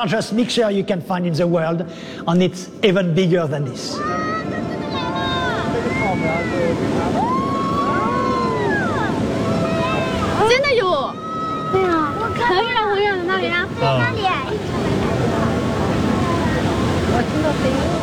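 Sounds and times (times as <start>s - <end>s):
speech: 0.0s - 4.6s, 6.2s - 7.4s, 11.8s - 14.9s, 17.2s - 18.0s
tidal bore surging upstream on the Chentang River: 3.9s - 18.0s
crowd shouting and calling excitedly: 4.0s - 17.0s.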